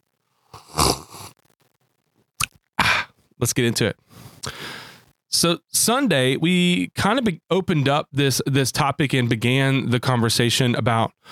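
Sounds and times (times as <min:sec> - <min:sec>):
person slurping a hot drink: 0:00.5 - 0:01.4
speech: 0:03.4 - 0:11.2.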